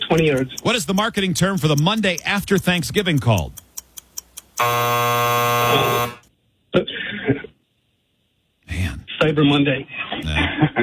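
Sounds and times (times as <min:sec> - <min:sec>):
quick clicks: 0:00.0 - 0:04.7
speech: 0:00.1 - 0:03.6, 0:04.6 - 0:06.2, 0:09.2 - 0:10.8
loud harsh game show time-up buzzer: 0:04.6 - 0:06.3.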